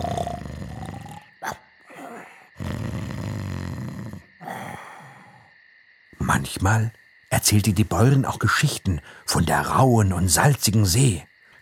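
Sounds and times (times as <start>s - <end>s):
pigs snoring softly: 0.0s - 4.9s
speech: 6.4s - 11.6s.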